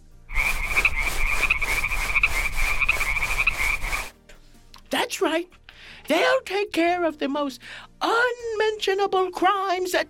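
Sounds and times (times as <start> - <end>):
frog croaking in loud raspy pulses: 0.3 - 4.1
speech: 5.1 - 10.0.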